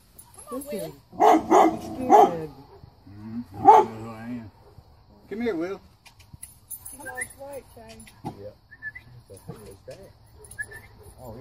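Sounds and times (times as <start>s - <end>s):
speech: 0.5s - 2.7s, 3.4s - 4.6s, 5.3s - 5.9s, 7.0s - 8.6s, 9.3s - 11.3s
dog barking excitedly: 1.2s - 2.4s, 3.6s - 4.0s
dog whining yelps: 10.4s - 11.2s.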